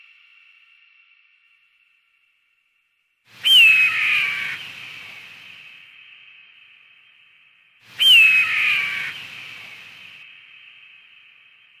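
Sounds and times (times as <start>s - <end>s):
red-tailed hawk screaming: 3.5s - 4.6s, 8.0s - 9.2s.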